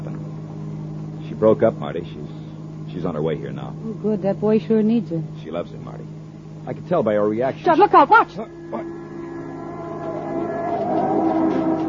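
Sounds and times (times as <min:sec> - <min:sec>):
speech: 0:01.4 - 0:09.0
taxi cab engine roaring past on slippery road: 0:08.6 - 0:11.8.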